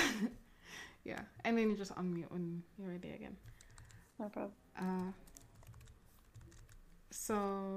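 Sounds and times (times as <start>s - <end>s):
low hum: 0.0s - 7.7s
speech: 1.0s - 3.6s, 4.2s - 5.3s, 7.1s - 7.7s
clicking of keys on a computer keyboard: 3.4s - 4.1s, 4.8s - 6.9s.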